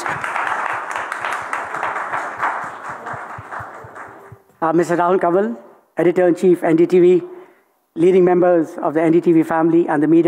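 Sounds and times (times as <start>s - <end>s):
large audience applauding a naval admiral at a defence conclave: 0.0s - 4.5s
speech: 4.6s - 7.3s, 8.0s - 10.2s.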